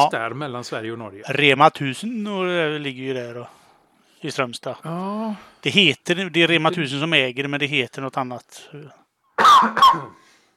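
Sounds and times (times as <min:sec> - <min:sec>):
speech: 0:00.0 - 0:03.6, 0:04.2 - 0:09.0, 0:09.6 - 0:10.3
person coughing: 0:09.4 - 0:10.2.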